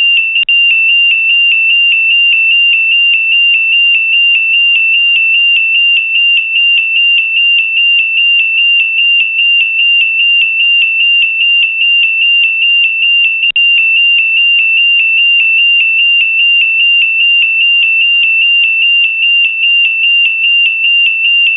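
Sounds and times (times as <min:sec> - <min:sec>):
control room alarm high piercing tone at ESA space operations centre: 0:00.0 - 0:21.5.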